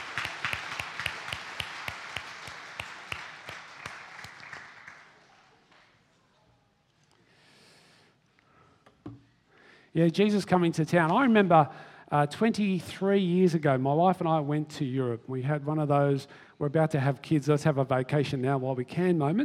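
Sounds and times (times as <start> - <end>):
group applauding helpers: 0.0 - 6.0
speech: 10.0 - 19.4.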